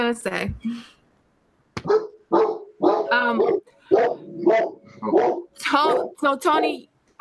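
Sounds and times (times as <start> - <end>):
speech: 0.0 - 1.0, 3.1 - 7.2
dogs barking loudly: 1.8 - 6.8.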